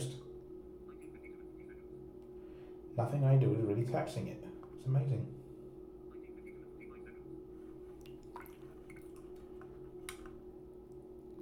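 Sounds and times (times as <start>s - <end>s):
steady low hum: 0.0s - 11.4s
speech: 3.0s - 5.4s
water dripping off a watch lifted out of water: 8.0s - 10.3s.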